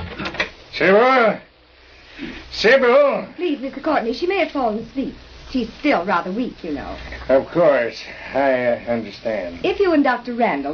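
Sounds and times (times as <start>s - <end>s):
front door hinges creaking: 0.0s - 0.5s
speech: 0.8s - 1.5s, 2.2s - 10.7s.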